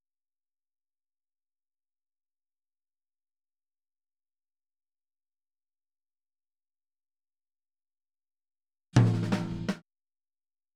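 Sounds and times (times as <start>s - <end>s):
boogaloo rack tom drum fill at 82 BPM: 9.0s - 9.8s.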